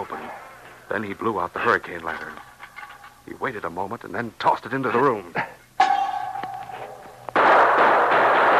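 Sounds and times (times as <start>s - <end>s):
speech: 0.9s - 2.5s, 3.3s - 5.6s
ringing metallic hit: 5.8s - 8.5s
gunshots fired in a dark room: 7.4s - 8.5s.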